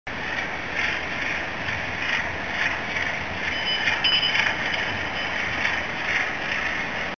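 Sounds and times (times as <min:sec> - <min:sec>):
ship: 0:00.1 - 0:07.1.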